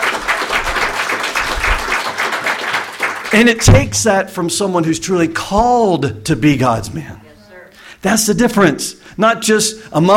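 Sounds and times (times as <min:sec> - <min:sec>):
audience clapping: 0:00.0 - 0:03.7
speech: 0:03.3 - 0:07.2, 0:08.0 - 0:10.1.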